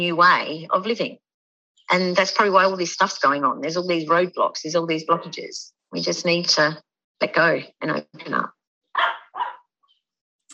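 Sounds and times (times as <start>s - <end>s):
speech: 0.0s - 1.2s, 1.9s - 9.1s
faint dog yip: 9.0s - 9.6s
dog barking: 9.0s - 9.7s.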